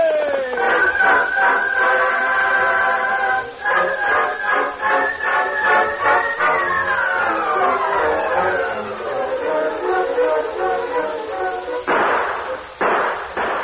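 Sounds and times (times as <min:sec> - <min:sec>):
swelling orchestral music passage: 0:00.2 - 0:13.0
loud sharp gunshots: 0:11.9 - 0:13.6.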